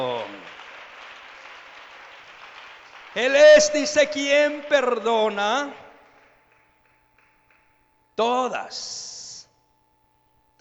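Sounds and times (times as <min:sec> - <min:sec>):
church congregation applauding during a worship service: 0:00.0 - 0:07.9
speech: 0:03.2 - 0:05.8, 0:08.2 - 0:09.2.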